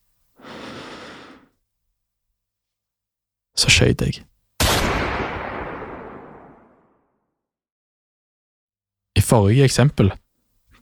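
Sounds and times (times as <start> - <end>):
deep breath drawn in: 0.4 - 1.6
speech: 3.6 - 4.3, 9.3 - 10.2.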